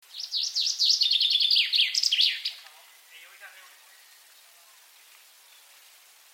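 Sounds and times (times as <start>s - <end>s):
common chaffinch song, Fringilla coelebs: 0.0s - 6.3s.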